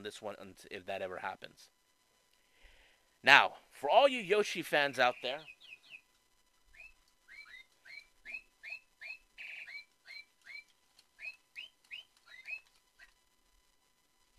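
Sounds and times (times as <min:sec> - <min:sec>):
speech: 0:00.0 - 0:01.8, 0:03.2 - 0:05.6
bird chirping in a room: 0:04.8 - 0:06.1, 0:06.7 - 0:13.2.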